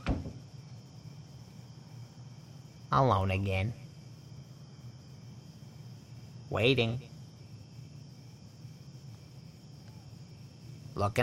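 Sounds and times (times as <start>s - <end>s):
door shutting: 0.0s - 0.5s
speech: 2.9s - 3.8s, 6.5s - 7.1s, 11.0s - 11.2s.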